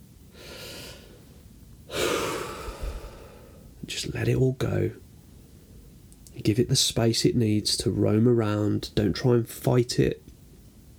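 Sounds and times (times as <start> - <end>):
person breathing deeply in and out: 0.3 - 1.3, 1.9 - 3.7
speech: 3.9 - 5.0, 6.4 - 10.2.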